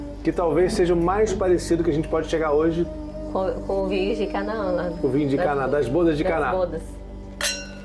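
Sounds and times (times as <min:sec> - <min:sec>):
low steady hum: 0:00.0 - 0:07.8
speech: 0:00.2 - 0:07.0
wine glasses clinking in a toast: 0:07.4 - 0:07.8.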